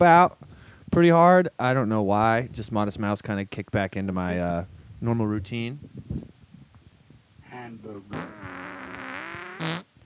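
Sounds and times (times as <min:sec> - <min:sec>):
speech: 0:00.0 - 0:06.3, 0:07.6 - 0:08.6, 0:09.6 - 0:09.8
drawn-out buzzy fart: 0:08.0 - 0:10.0.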